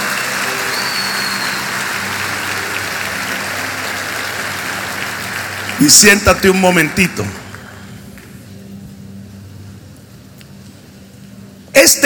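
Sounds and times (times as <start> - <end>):
large indoor crowd applauding: 0.0 - 8.4
speech: 5.8 - 7.4, 11.9 - 12.0.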